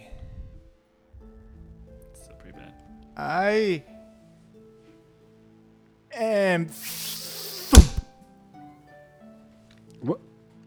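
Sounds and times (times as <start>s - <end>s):
speech: 2.4s - 3.9s, 6.2s - 7.1s, 10.0s - 10.3s
arrow striking and piercing a woman's body: 6.8s - 8.1s
faint swishing hit: 6.8s - 8.1s.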